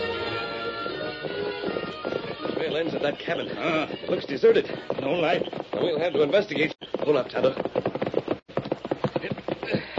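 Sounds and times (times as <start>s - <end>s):
horses' hooves clip-clopping along a trail: 0.0s - 9.9s
speech: 2.7s - 7.9s.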